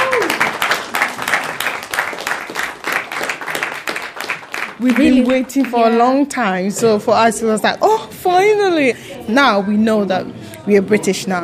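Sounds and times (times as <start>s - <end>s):
crowd applauding at a citizenship ceremony: 0.0s - 6.4s
speech: 4.8s - 11.4s.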